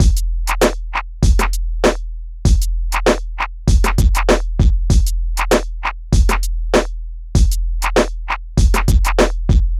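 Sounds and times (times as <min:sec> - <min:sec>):
hip hop drum beat: 0:00.0 - 0:09.7.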